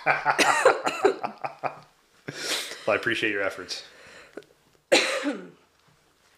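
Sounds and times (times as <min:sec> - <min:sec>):
speech: 0:00.0 - 0:01.7, 0:02.9 - 0:04.0
laughter: 0:00.0 - 0:03.0
person having a coughing fit: 0:00.4 - 0:01.2, 0:04.9 - 0:05.6.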